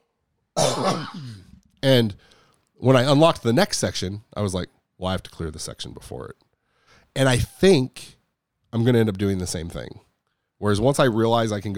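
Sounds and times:
person coughing: 0:00.6 - 0:01.6
raspy throat clearing: 0:00.6 - 0:01.6
speech: 0:00.8 - 0:06.4, 0:07.2 - 0:10.0, 0:10.6 - 0:11.7.

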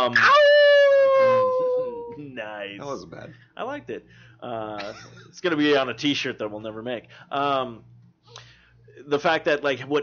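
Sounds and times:
speech: 0:00.0 - 0:00.4, 0:02.6 - 0:10.0
person imitating a wolf howl: 0:00.1 - 0:02.2.

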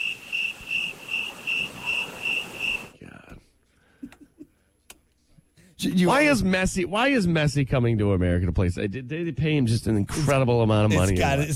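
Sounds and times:
cricket chirping sound effect played from a cricket button: 0:00.0 - 0:02.9
speech: 0:05.8 - 0:11.5.

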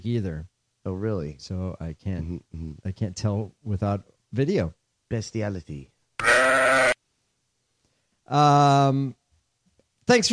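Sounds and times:
speech: 0:00.0 - 0:05.9, 0:08.3 - 0:09.2, 0:10.1 - 0:10.3
sheep bleating: 0:06.2 - 0:07.0.

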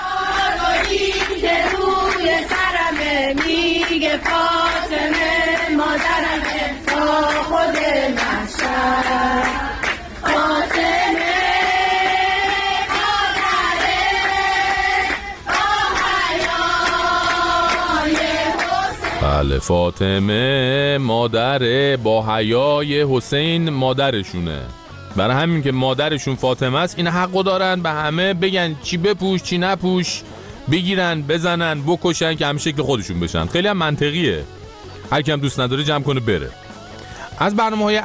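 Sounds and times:
group of women singing an anthem in unison inside a metro car: 0:00.0 - 0:19.2
speech: 0:19.5 - 0:36.6, 0:37.4 - 0:38.0.

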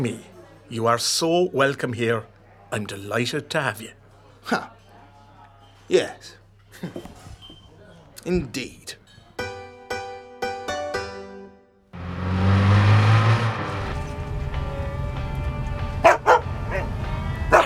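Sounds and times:
speech: 0:00.0 - 0:04.8, 0:05.9 - 0:07.2, 0:08.2 - 0:09.0
jeep engine starting and rumbling: 0:12.0 - 0:17.6
dog barking inside a moving jeep: 0:16.0 - 0:17.6.

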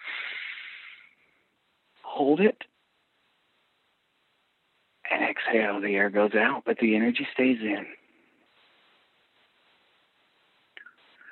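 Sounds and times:
deep inhale through the nose during a guided breathing exercise: 0:00.0 - 0:01.4
speech: 0:02.2 - 0:02.7, 0:05.5 - 0:08.0.

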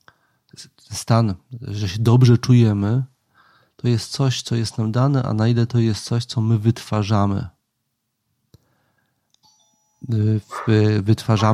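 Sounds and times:
speech: 0:00.5 - 0:03.1, 0:03.8 - 0:07.6, 0:10.0 - 0:11.5
short loud doorbell buzz: 0:09.4 - 0:10.3
faint lingering chime tone: 0:09.4 - 0:11.0.

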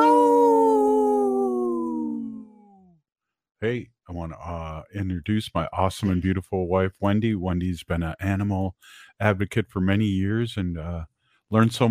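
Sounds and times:
single long wolf howl: 0:00.0 - 0:02.6
speech: 0:03.6 - 0:11.8.

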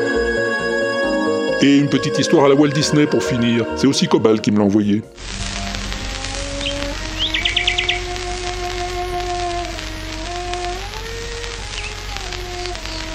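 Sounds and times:
slow sustained cello notes: 0:00.0 - 0:13.1
speech: 0:01.6 - 0:05.5
steady crackling hiss: 0:01.6 - 0:13.1
nightingale trilling: 0:05.6 - 0:13.1.

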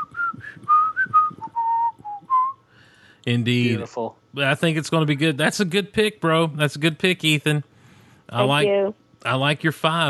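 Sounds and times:
person whistling a short lilting tune: 0:00.0 - 0:02.6
speech: 0:03.2 - 0:07.7, 0:08.3 - 0:10.0.

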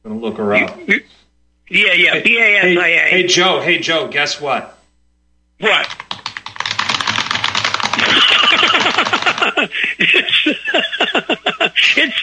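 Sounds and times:
speech: 0:00.0 - 0:04.8, 0:05.6 - 0:06.0, 0:09.6 - 0:12.2
rapid keyboard typing: 0:05.6 - 0:09.8
laughter: 0:08.0 - 0:12.2.

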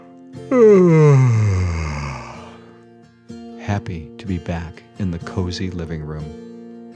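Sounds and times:
speech: 0:00.5 - 0:01.4, 0:03.8 - 0:06.5
long voiced yawn sliding downward in pitch: 0:00.5 - 0:02.8.

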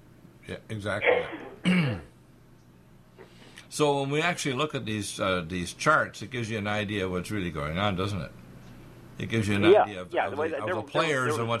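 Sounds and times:
speech: 0:00.5 - 0:02.1, 0:03.7 - 0:08.4, 0:09.2 - 0:11.5
gruff throat clearing from a tickle edging into a small cough: 0:01.0 - 0:02.1.

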